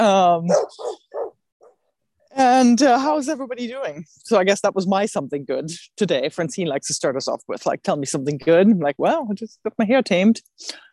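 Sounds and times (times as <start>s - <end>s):
speech: 0.0s - 1.0s, 2.4s - 10.9s
dogs barking: 0.5s - 1.8s.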